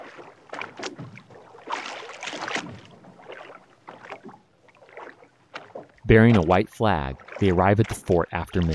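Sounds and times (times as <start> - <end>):
oars rowing a boat through water to Fort Sumter: 0.0 - 8.7
speech: 6.1 - 8.7.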